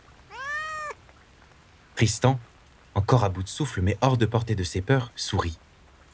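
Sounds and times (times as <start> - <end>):
high-pitched meow from a kitten in a cardboard box: 0.3 - 1.0
speech: 2.0 - 5.6.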